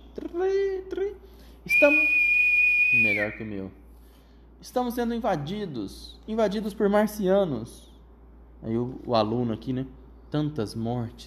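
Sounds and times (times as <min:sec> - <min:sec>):
speech: 0:00.4 - 0:02.3, 0:02.9 - 0:03.8, 0:04.6 - 0:07.9, 0:08.6 - 0:11.2
police whistle blast: 0:01.7 - 0:03.6.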